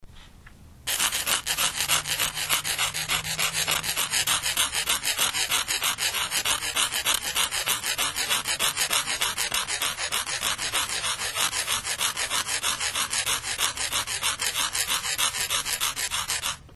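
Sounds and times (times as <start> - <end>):
scratching: 0.9 - 16.7.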